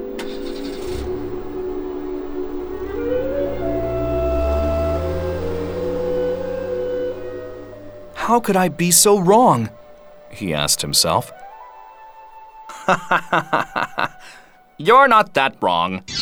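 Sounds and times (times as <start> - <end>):
car engine rumbling and revving as the vehicle pulls away: 0.0 - 11.5
speech: 8.3 - 11.4, 12.9 - 13.6, 14.8 - 16.2
laughter: 12.7 - 14.5.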